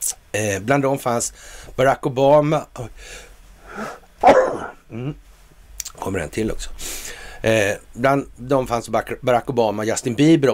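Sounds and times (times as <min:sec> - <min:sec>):
speech: 0:00.3 - 0:05.2, 0:06.0 - 0:10.5
sharp breathy inhales: 0:03.0 - 0:04.1, 0:06.8 - 0:07.4
person sneezing: 0:03.7 - 0:05.2.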